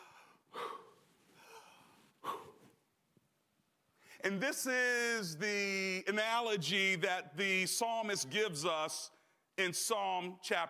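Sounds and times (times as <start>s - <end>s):
person panting heavily: 0.0s - 2.8s
speech: 4.2s - 10.6s.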